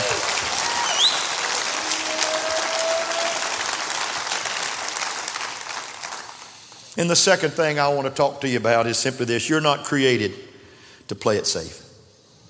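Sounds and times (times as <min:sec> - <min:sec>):
large crowd clapping: 0:00.0 - 0:07.0
speech: 0:07.0 - 0:10.5, 0:11.1 - 0:11.8.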